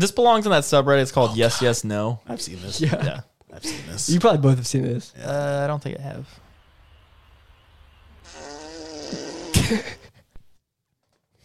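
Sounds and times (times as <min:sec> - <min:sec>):
speech: 0:00.0 - 0:06.4, 0:09.1 - 0:10.1
deer farting: 0:08.2 - 0:10.1.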